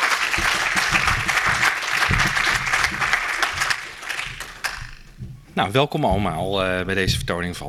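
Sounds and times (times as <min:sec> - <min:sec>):
large audience applauding: 0:00.0 - 0:05.0
speech: 0:05.6 - 0:07.6.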